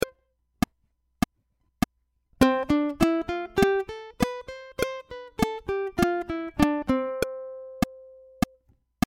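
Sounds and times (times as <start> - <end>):
slow full C scale: 2.4 - 8.5
click track: 7.2 - 8.8.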